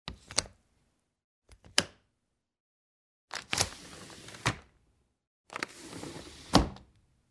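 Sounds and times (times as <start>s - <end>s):
plastic window opening and closing: 3.3s - 4.7s, 5.5s - 6.9s.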